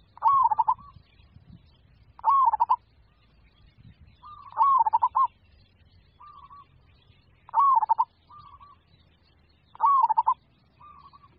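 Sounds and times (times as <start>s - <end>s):
zebra dove cooing: 0.0s - 0.9s, 2.2s - 2.8s, 4.2s - 5.3s, 7.5s - 8.8s, 9.8s - 11.3s.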